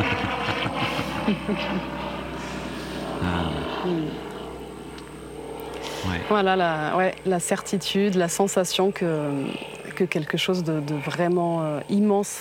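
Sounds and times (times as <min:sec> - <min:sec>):
laughter: 0:00.0 - 0:02.0
airplane passing overhead: 0:00.0 - 0:12.3
speech: 0:01.3 - 0:02.0, 0:03.2 - 0:04.2, 0:06.0 - 0:12.3
person vocalizing: 0:03.2 - 0:04.2.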